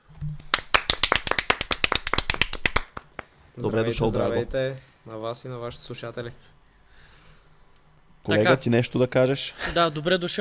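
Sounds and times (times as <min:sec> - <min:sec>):
applause from a small group welcoming a football goalkeeper: 0:00.5 - 0:03.3
speech: 0:03.6 - 0:06.6, 0:08.2 - 0:10.3.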